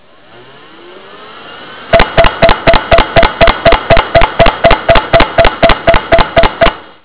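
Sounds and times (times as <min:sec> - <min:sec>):
hard drive with bad head: 0:01.9 - 0:07.0.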